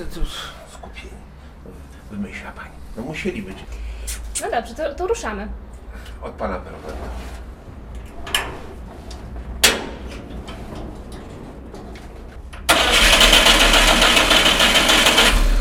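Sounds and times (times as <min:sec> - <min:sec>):
speech: 0:00.0 - 0:07.4
starter motor cranking an old car engine: 0:12.6 - 0:15.5
vintage car engine running with a loud rough roar: 0:12.7 - 0:15.5.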